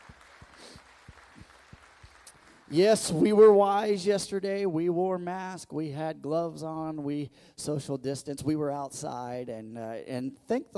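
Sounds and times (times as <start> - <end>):
loud evenly spaced claps: 0.0 - 3.1
scattered applause from a small group: 0.0 - 3.1
speech: 2.7 - 10.7.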